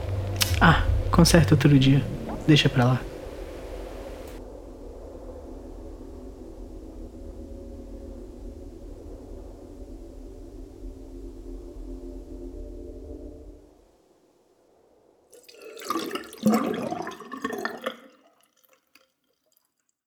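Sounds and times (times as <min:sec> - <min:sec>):
speech: 0:00.6 - 0:03.1
leaky faucet dripping into a mug in a sink: 0:15.4 - 0:20.0.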